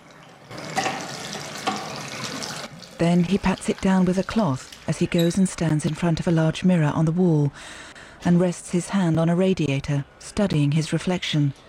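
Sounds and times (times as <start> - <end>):
running tap water at a washroom sink as a man washes his face: 0.0 - 6.3
water splashing: 0.6 - 5.2
speech: 3.0 - 11.6.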